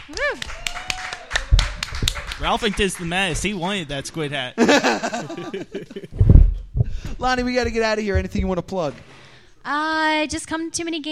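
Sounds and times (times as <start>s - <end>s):
small audience clapping: 0.0s - 3.9s
speech: 0.1s - 0.6s, 2.4s - 6.2s, 7.2s - 11.1s
rising-and-falling vocal whoop: 0.2s - 2.1s
laughter: 4.6s - 6.2s.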